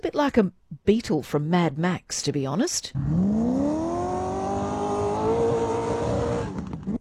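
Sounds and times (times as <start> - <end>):
speech: 0.0 - 3.5
racing car engine roaring during a race event: 3.0 - 6.9.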